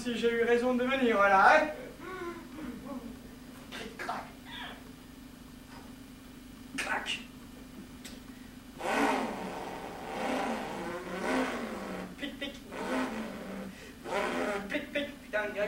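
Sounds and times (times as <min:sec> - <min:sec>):
speech: 0:00.0 - 0:01.9, 0:06.8 - 0:07.3
voice imitating car engine revving: 0:08.8 - 0:14.9.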